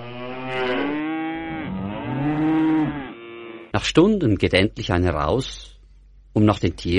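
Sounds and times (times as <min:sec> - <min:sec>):
cows lowing in a barn: 0:00.0 - 0:03.7
speech: 0:03.8 - 0:05.7, 0:06.4 - 0:06.9.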